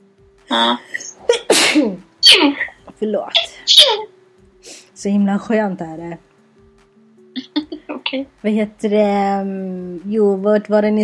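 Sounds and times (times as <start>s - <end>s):
person sneezing loudly: 0.5s - 2.8s, 3.4s - 4.0s
speech: 0.5s - 4.2s, 5.0s - 6.3s, 8.1s - 11.0s.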